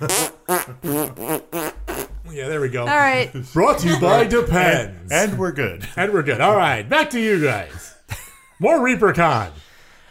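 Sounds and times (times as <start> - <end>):
speech: 0.0 - 0.9, 2.6 - 7.9, 8.6 - 9.6
short buzzy fart sounds with wobbling pitch: 0.0 - 2.3.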